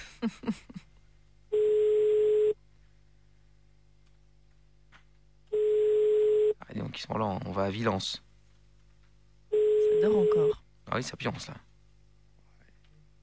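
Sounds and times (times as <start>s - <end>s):
speech: 0.2s - 0.8s, 7.0s - 8.3s, 10.0s - 11.7s
telephone ringing tone over a phone line: 1.5s - 2.6s, 5.5s - 6.6s, 9.5s - 10.6s.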